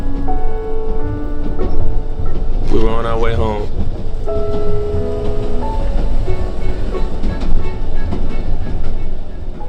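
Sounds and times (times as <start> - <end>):
train rolling along the rails: 0.0 - 9.6
speech: 3.0 - 4.8.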